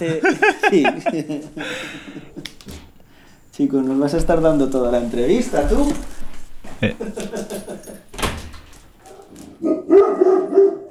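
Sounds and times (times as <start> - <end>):
speech: 0.0 - 2.3, 3.6 - 6.1, 6.8 - 8.0
laughter: 0.0 - 2.9, 4.9 - 8.1
thump like a door: 4.1 - 9.5
dog barking: 9.0 - 10.9.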